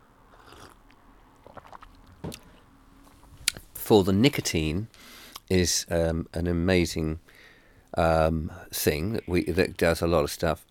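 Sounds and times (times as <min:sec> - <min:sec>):
slurping a drink: 0:00.3 - 0:02.6
speech: 0:03.9 - 0:10.6.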